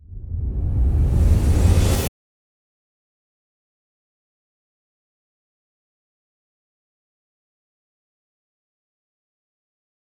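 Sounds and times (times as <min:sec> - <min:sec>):
reversed orchestral riser: 0:00.0 - 0:02.1.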